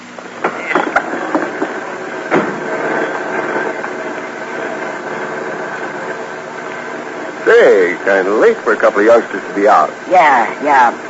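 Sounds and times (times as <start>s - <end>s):
car engine running: 0.3s - 10.0s
sharp knocks and clatters: 0.4s - 6.9s
speech: 7.8s - 11.0s.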